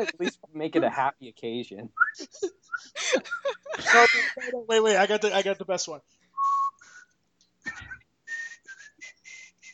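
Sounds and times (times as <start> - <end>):
speech: 0.0 - 6.2
person whistling a short breathy wavering tune: 6.4 - 7.1, 7.7 - 9.7.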